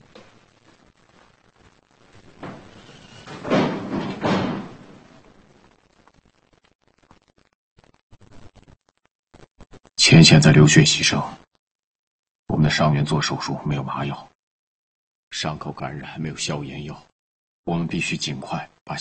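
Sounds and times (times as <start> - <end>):
noise: 0.0 - 11.5, 15.3 - 17.1, 17.7 - 18.9
door closing thump: 2.4 - 5.3
speech: 10.0 - 11.4, 12.8 - 14.3, 15.3 - 18.9.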